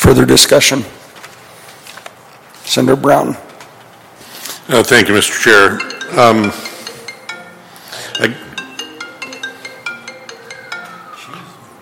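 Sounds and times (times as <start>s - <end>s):
speech: 0.1s - 1.0s, 2.7s - 3.4s, 4.7s - 6.6s, 8.2s - 8.4s
mobile phone ringing with bright bell-like chiming ringtone during a senate committee meeting: 5.6s - 11.8s.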